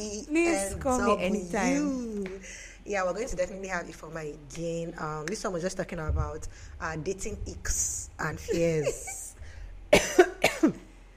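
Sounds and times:
speech: 0.0 - 9.2
person with a tired throat coughing: 9.9 - 10.9.

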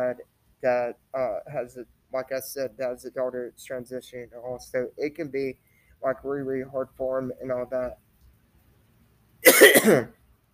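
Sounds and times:
speech: 0.1 - 8.0, 9.4 - 10.2
harsh raspy throaty cough: 9.4 - 10.2.

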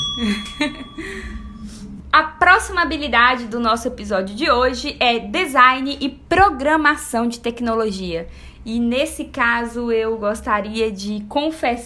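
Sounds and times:
small bell ringing: 0.0 - 1.7
speech: 0.2 - 11.8.

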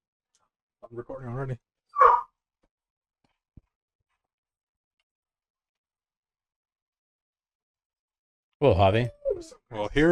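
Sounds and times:
speech: 0.8 - 2.1, 8.6 - 10.1
dog barking: 2.0 - 2.3.

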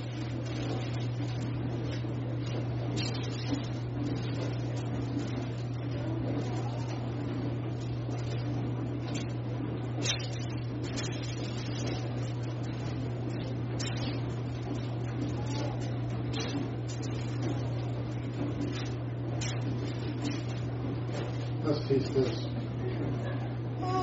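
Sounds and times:
dishwasher running with low hum and broadband noise: 0.0 - 24.0.

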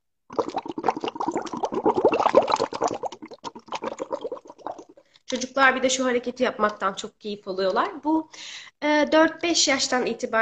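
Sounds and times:
bubbles blown into water: 0.3 - 5.1
speech: 5.6 - 10.4.

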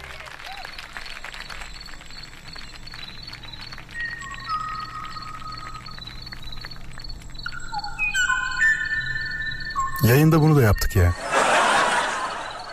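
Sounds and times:
steady low hum: 0.0 - 12.7
last male Kauai ʻōʻō song of clear whistled notes: 1.6 - 11.2
speech: 10.0 - 11.3
laughter: 11.2 - 12.7.

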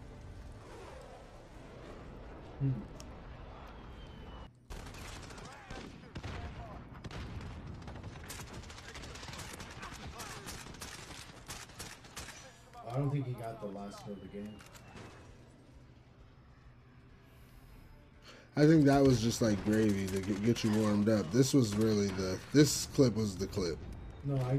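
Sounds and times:
speech: 2.6 - 3.0, 13.0 - 14.8, 18.6 - 24.5
semi-automatic rifle and shotgun gunfire in a video game: 4.7 - 12.5, 19.4 - 22.4.

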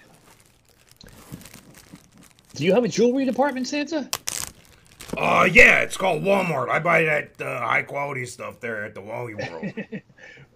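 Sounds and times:
loose leaf paper sheet rustling and crinkling while handled: 0.0 - 8.0
speech: 2.6 - 4.2, 5.2 - 10.5
laughter: 9.2 - 10.1.

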